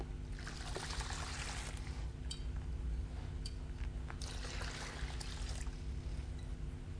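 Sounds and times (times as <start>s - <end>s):
low hum: 0.0s - 6.9s
water pouring into a basin: 0.3s - 1.9s, 4.2s - 5.8s.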